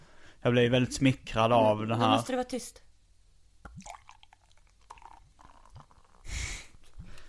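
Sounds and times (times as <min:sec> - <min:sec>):
speech: 0:00.4 - 0:02.8, 0:03.7 - 0:04.0
Young's Double Chocolate Stout beer glugging and splashing into a glass: 0:03.7 - 0:06.3.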